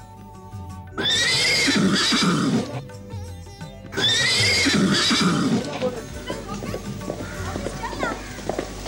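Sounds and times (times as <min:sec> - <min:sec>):
horse neighing: 0:01.0 - 0:02.8, 0:04.0 - 0:08.6.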